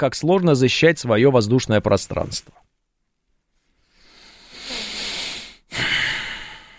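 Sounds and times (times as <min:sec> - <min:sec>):
speech: 0:00.0 - 0:02.7
heavy breathy exhalations blown into a microphone: 0:03.8 - 0:06.7.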